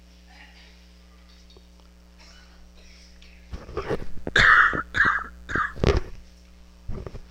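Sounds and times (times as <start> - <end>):
group of people clearing throats: 2.2 - 3.1, 4.3 - 5.9.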